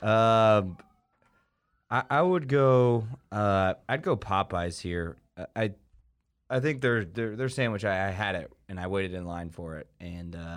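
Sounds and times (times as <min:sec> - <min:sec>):
speech: 0:00.0 - 0:00.9, 0:01.9 - 0:05.8, 0:06.5 - 0:10.5
person vocally imitating a police siren: 0:00.0 - 0:03.5.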